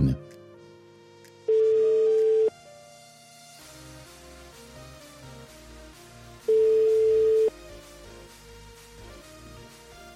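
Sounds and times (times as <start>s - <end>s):
quiet music: 0.0s - 10.1s
telephone ringback tone while dialing: 1.5s - 2.5s, 6.5s - 7.5s.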